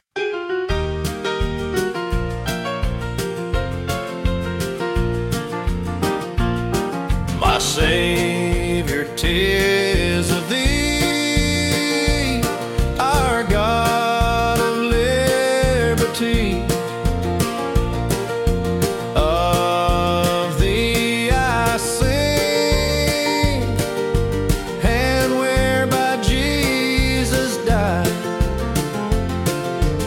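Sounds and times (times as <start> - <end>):
country piano music: 0.0 - 30.0.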